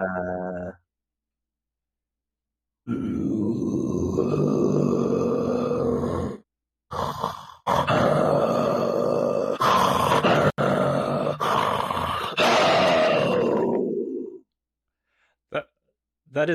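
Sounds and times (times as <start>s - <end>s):
man imitating a tiger's roar in the back of his throat: 0.0s - 0.8s, 2.8s - 14.4s.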